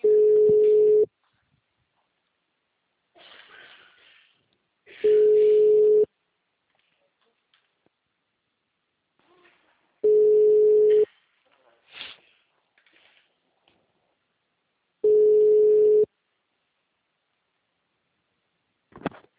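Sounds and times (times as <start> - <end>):
unanswered telephone call ringback tones: 0.0 - 1.1, 5.0 - 6.1, 10.0 - 11.0, 15.0 - 16.1.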